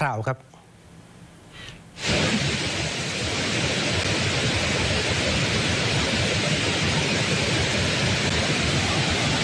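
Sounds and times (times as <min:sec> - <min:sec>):
speech: 0:00.0 - 0:00.6
flash-flood water pouring over a waterfall: 0:02.0 - 0:09.4.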